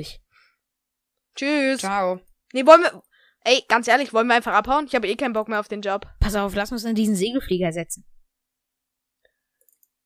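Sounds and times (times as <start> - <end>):
speech: 0.0 - 0.2, 1.4 - 8.1
computer mouse clicks: 9.6 - 10.0.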